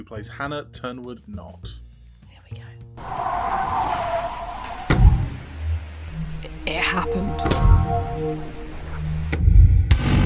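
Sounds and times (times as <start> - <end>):
speech: 0.0 - 1.8, 2.5 - 3.9, 6.7 - 8.6
car tires screeching in a skid: 3.0 - 9.5
low rumbling settle: 3.0 - 10.1
heavy impact thud of a car hitting a pedestrian: 4.9 - 5.5.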